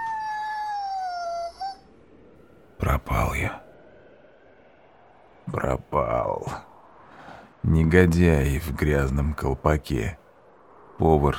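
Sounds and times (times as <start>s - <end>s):
dog howling: 0.0s - 2.1s
speech: 5.5s - 6.7s, 7.6s - 10.2s, 11.0s - 11.3s.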